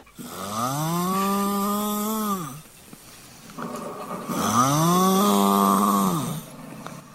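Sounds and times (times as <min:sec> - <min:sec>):
person snoring: 0:00.2 - 0:02.7, 0:04.3 - 0:06.5.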